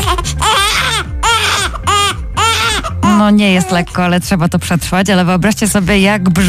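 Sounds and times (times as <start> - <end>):
newborn baby crying: 0.0 - 3.9
speech: 3.2 - 6.4.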